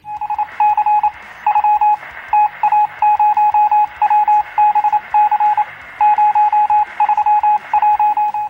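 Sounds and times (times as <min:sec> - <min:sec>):
faint radio hiss: 0:00.0 - 0:08.4
telegraph-style Morse code beeps in a high tone: 0:00.0 - 0:08.4.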